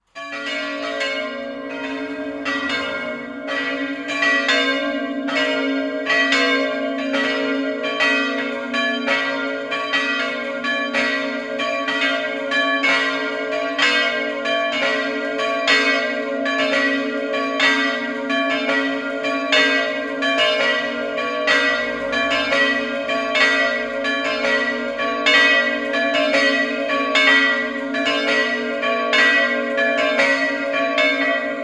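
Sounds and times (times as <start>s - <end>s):
bells ringing: 0.2s - 31.6s.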